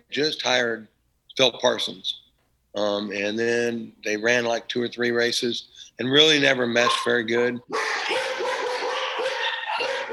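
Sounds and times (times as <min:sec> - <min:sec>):
speech: 0:00.1 - 0:02.2, 0:02.8 - 0:07.9
dogs from a household of eleven or twelve dogs barking: 0:06.6 - 0:10.1.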